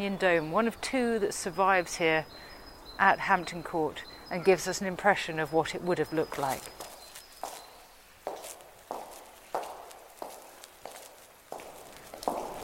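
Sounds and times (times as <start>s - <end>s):
speech: 0.0s - 6.8s
person walking down an empty corridor on a hard floor: 6.6s - 12.6s.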